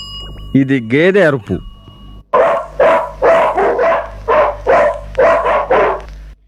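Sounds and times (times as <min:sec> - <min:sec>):
speech: 0:00.6 - 0:01.7
dog barking loudly: 0:02.3 - 0:06.1.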